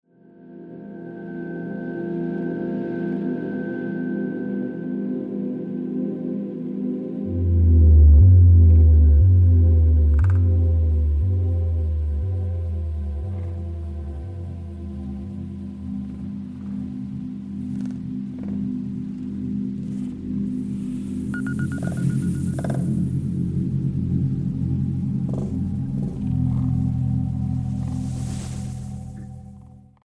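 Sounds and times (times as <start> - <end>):
experimental drone: 6.8 - 30.0.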